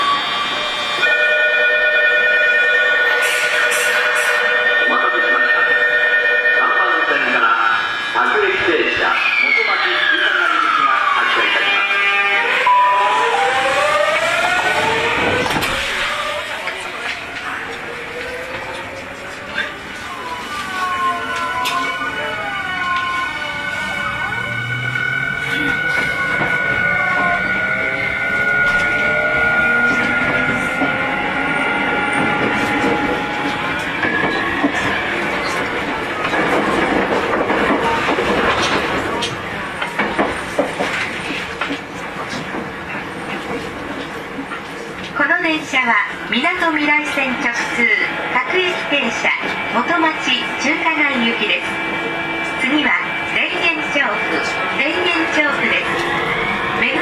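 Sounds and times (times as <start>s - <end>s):
Tokyu 5050 series train running between Jiyugaoka and Den-en-chofu: 0.0s - 57.0s.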